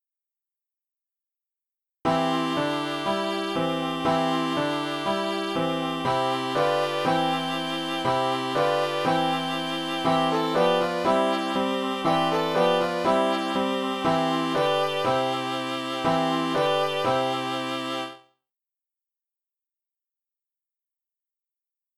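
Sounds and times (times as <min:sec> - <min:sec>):
piano instrumental in C: 0:02.1 - 0:18.2.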